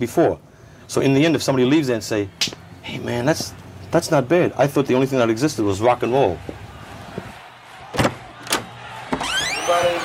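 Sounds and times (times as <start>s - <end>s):
speech: 0.0s - 6.6s
door thumps: 7.9s - 9.6s.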